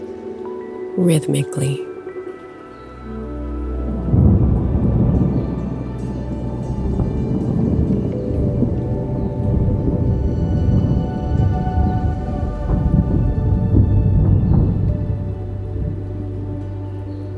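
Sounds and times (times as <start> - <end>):
speech: 1.0 - 1.9
rain pouring: 2.5 - 17.3
thunder rumbling: 3.6 - 17.3.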